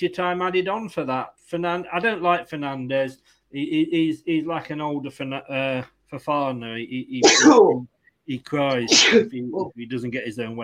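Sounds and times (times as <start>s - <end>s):
speech: 0.0s - 10.6s
person sneezing: 7.2s - 7.8s, 8.9s - 9.3s.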